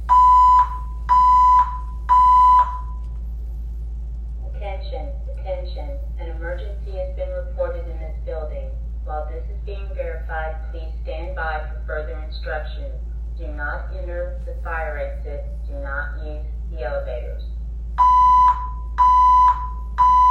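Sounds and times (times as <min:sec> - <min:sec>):
low hum: 0:00.0 - 0:20.2
hotel electronic alarm beeps: 0:00.1 - 0:03.0, 0:18.0 - 0:20.2
spoken announcement: 0:04.4 - 0:17.8.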